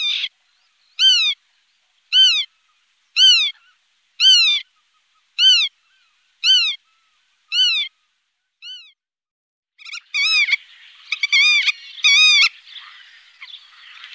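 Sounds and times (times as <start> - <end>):
Black-tailed godwit calling: 1.0 - 1.4, 2.1 - 2.5, 3.2 - 8.0, 9.8 - 14.1.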